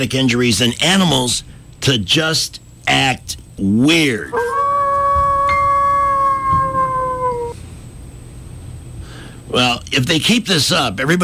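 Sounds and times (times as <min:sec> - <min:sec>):
speech: 0:00.0 - 0:04.5, 0:09.5 - 0:11.2
wolf howling: 0:04.3 - 0:07.7.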